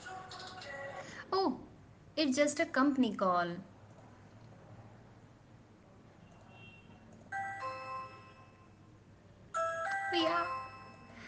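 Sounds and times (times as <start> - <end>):
speech: 2.2 - 3.7
electronic doorbell ding-dong chiming, rung by the milkman: 7.4 - 8.8, 9.6 - 11.2.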